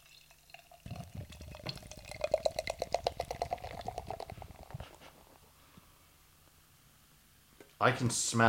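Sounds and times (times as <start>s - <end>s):
sour beer poured aggressively into a glass: 0.0s - 5.0s
speech: 7.8s - 8.4s.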